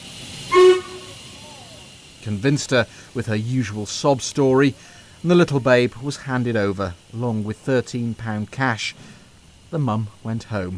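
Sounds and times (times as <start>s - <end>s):
train horn blast: 0.5s - 1.4s
speech: 2.2s - 10.7s.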